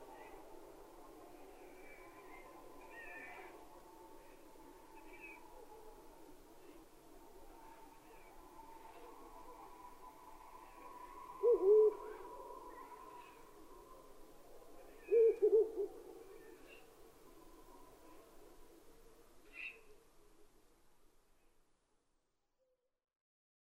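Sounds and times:
Ural owl calling: 0:01.6 - 0:03.5, 0:05.0 - 0:05.4, 0:10.6 - 0:13.4, 0:14.8 - 0:16.8, 0:19.5 - 0:19.9.

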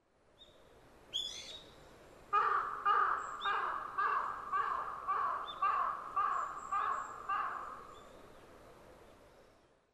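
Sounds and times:
large-billed crow calling: 0:02.4 - 0:07.8.

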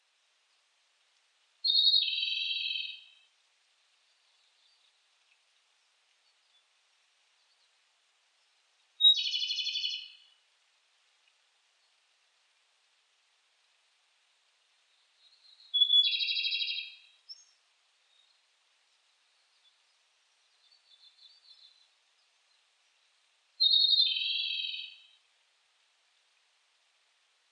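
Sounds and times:
Japanese robin singing: 0:01.6 - 0:03.3, 0:09.0 - 0:10.4, 0:14.9 - 0:18.4, 0:19.3 - 0:22.6, 0:23.6 - 0:25.2.

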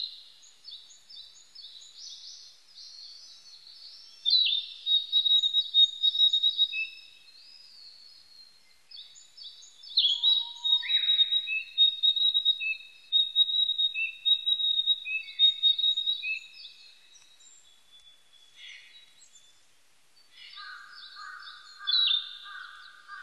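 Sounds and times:
Narcissus flycatcher singing loud high whistled phrases: 0:03.2 - 0:07.6, 0:09.8 - 0:19.5, 0:20.5 - 0:22.5.

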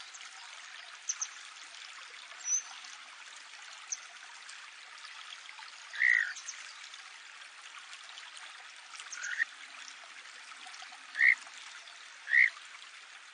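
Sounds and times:
flowing water: 0:00.0 - 0:13.3
Kajika frog giving whistled notes: 0:12.3 - 0:12.5.

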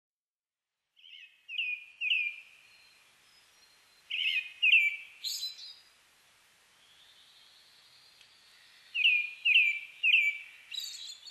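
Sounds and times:
brown-headed thrush singing whistled phrases: 0:01.5 - 0:05.9, 0:06.8 - 0:11.2.

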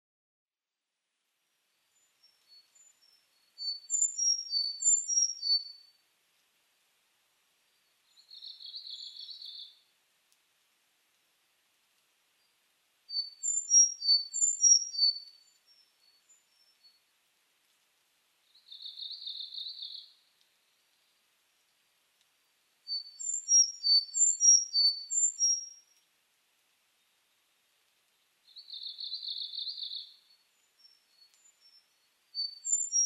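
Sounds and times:
Sakhalin leaf warbler: 0:01.7 - 0:06.0, 0:07.6 - 0:09.9, 0:12.3 - 0:17.1, 0:18.4 - 0:26.1, 0:26.9 - 0:33.0.

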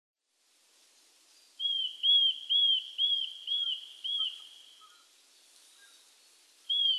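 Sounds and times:
Eurasian nuthatch uttering arched whistles: 0:01.6 - 0:05.0, 0:06.7 - 0:06.9.

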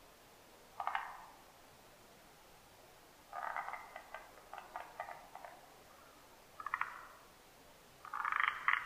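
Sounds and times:
Forest green tree frog calling in rapid clicking notes: 0:00.8 - 0:01.4, 0:03.3 - 0:05.6, 0:06.6 - 0:07.2, 0:08.0 - 0:08.8.

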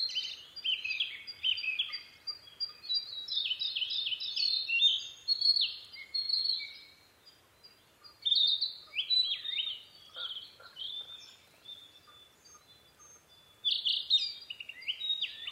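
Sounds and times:
Narcissus flycatcher singing: 0:00.0 - 0:15.4.

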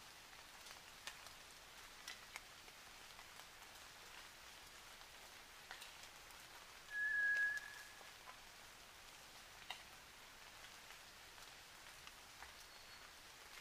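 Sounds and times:
steady hiss: 0:00.0 - 0:13.5
White's thrush giving a thin level whistled note at night: 0:06.9 - 0:08.0.

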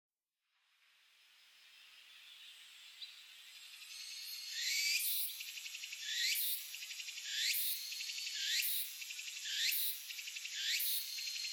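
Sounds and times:
Walker's cicada song: 0:04.5 - 0:11.5.

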